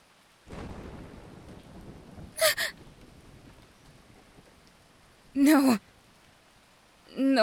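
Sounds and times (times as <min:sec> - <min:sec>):
steady rain hissing in a thunderstorm: 0:00.0 - 0:07.4
low rumble of thunder: 0:00.5 - 0:05.4
speech: 0:05.4 - 0:05.9.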